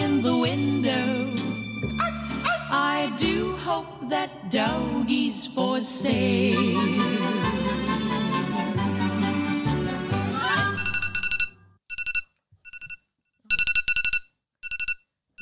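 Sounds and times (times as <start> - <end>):
music: 0.0 - 10.8
speech: 3.8 - 8.0
phone alarm ringing in bright electronic bursts: 10.7 - 15.4.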